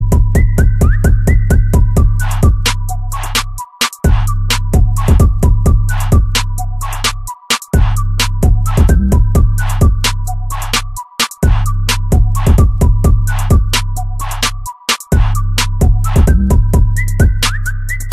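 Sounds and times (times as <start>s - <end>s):
phone whistle ringtone: 0.0s - 18.1s.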